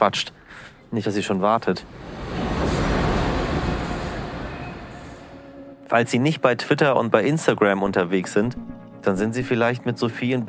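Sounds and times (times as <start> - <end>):
speech: 0.0 - 2.7, 5.9 - 10.4
train rumbling past a station platform: 1.6 - 5.8.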